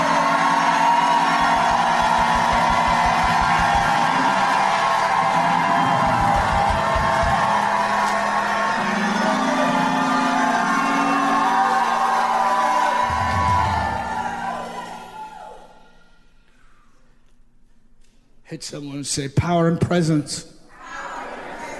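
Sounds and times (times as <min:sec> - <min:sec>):
large audience at a sermon shouting and whooping: 0:00.0 - 0:15.8
speech: 0:18.6 - 0:20.5.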